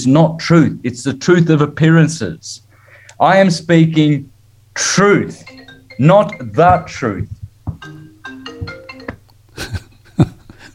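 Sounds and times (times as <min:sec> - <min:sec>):
speech: 0:00.0 - 0:02.6, 0:03.2 - 0:08.0
phone ringing with a short electronic melody: 0:05.2 - 0:09.3
sharp knocks and clatters: 0:07.2 - 0:07.9.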